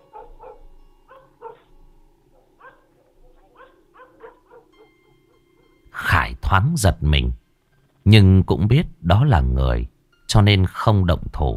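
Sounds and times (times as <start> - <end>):
dog barking: 0.0 - 1.7, 2.4 - 5.2
speech: 6.5 - 7.4, 8.0 - 11.5.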